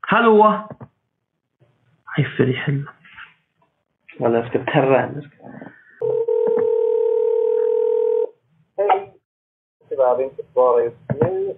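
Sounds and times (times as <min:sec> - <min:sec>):
speech: 0:00.1 - 0:00.8, 0:02.2 - 0:03.0, 0:04.2 - 0:05.8, 0:10.0 - 0:11.5
steady electronic telephone tone after a call is cut off: 0:06.0 - 0:08.3.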